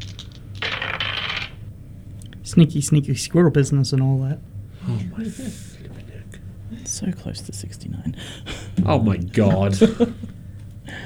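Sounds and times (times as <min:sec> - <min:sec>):
digital dice roll: 0:00.0 - 0:01.6
speech: 0:02.6 - 0:06.0, 0:07.0 - 0:10.4
laughter: 0:04.8 - 0:11.0.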